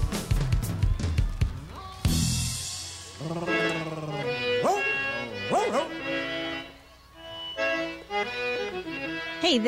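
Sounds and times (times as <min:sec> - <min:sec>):
busy music with voice-like sounds: 0:00.0 - 0:09.6
dog barking and yelping: 0:04.6 - 0:06.0
speech: 0:09.4 - 0:09.6.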